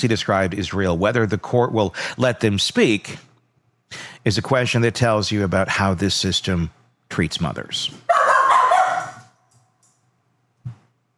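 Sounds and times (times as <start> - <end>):
speech: 0.0 - 3.3, 3.9 - 8.1
dog barking: 8.1 - 9.4.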